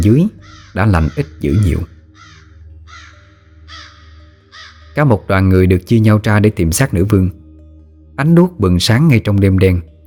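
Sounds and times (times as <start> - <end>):
speech: 0.0 - 1.9, 5.0 - 7.4, 8.2 - 9.9
crows cawing on a windy hillside: 0.3 - 5.0.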